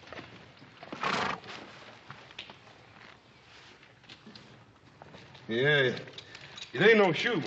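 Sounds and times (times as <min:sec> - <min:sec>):
horse whinnying loudly: 0:00.9 - 0:01.5
horse shuffling movement: 0:01.5 - 0:06.8
speech: 0:05.5 - 0:06.2, 0:06.8 - 0:07.4.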